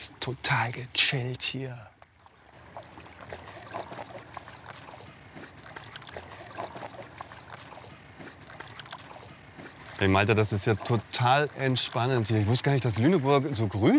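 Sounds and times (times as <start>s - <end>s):
boat gliding along calm river water with a steady low hum: 0.0s - 13.9s
gentle river water splashing and lapping near Lüneburg, Germany: 0.0s - 13.9s
speech: 0.2s - 2.0s, 10.0s - 13.9s.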